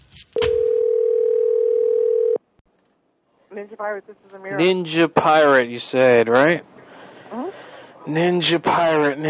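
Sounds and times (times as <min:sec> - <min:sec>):
electronic ringback tone of an outgoing phone call to a store in Pflugerville Texas: 0:00.4 - 0:02.4
speech: 0:03.8 - 0:06.7, 0:07.4 - 0:09.2.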